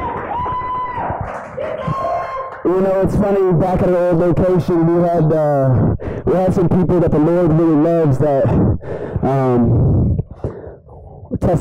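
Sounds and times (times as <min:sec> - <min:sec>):
church audience at a morning service clapping and cheering: 0:00.0 - 0:03.3
speech: 0:02.6 - 0:10.2, 0:11.4 - 0:11.5.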